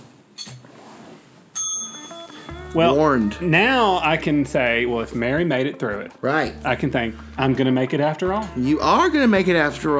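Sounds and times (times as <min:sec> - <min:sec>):
bicycle bell ringing: 0:01.6 - 0:03.1
speech: 0:02.7 - 0:09.9.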